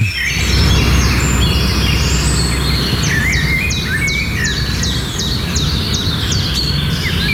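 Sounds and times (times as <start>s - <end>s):
birds singing and chirping: 0.0s - 7.3s
steady low rumble of outdoor noise: 0.0s - 7.3s.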